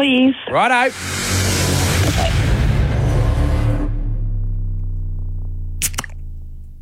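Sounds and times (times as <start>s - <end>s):
loud, rough rumbling noise: 0.5s - 6.8s
low hum: 0.5s - 6.8s
beer can cracking open: 5.8s - 6.2s.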